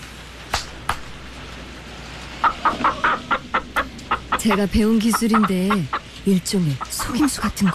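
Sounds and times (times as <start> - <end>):
sharp hand claps to wake a sleeping chicken: 0.5 - 1.1
chicken clucking: 2.3 - 7.7
speech: 4.4 - 7.7.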